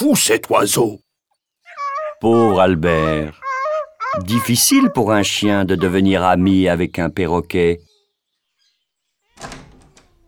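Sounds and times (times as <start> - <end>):
speech: 0.0 - 1.1, 2.2 - 3.4, 4.1 - 7.9, 9.4 - 9.6
veterinarian's waiting room door opening with a thunk: 9.3 - 10.2.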